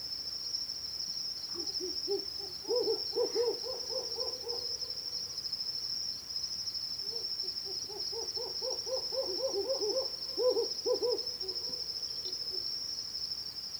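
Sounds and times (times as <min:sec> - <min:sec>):
two male Hume's owls giving pulsed hoots in territorial confrontation: 0:01.5 - 0:05.0, 0:07.1 - 0:12.6.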